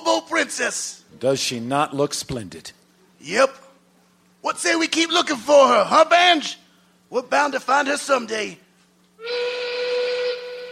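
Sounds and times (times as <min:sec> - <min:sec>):
speech: 0:00.1 - 0:03.6, 0:04.4 - 0:08.6
steam locomotive whistle blowing: 0:09.2 - 0:10.7.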